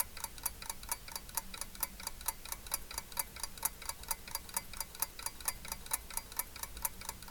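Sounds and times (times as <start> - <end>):
clock ticking: 0.0 - 7.2.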